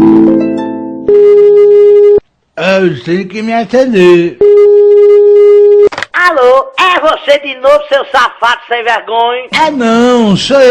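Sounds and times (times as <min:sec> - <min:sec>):
steady telephone busy tone after the call is hung up: 0:01.1 - 0:02.2, 0:04.4 - 0:05.9
speech: 0:02.8 - 0:04.4, 0:06.4 - 0:10.6.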